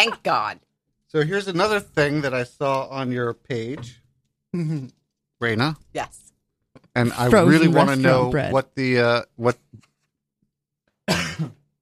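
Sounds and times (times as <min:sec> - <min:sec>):
speech: 0:00.0 - 0:06.2, 0:07.0 - 0:09.6, 0:11.1 - 0:11.6
person coughing: 0:11.1 - 0:11.6.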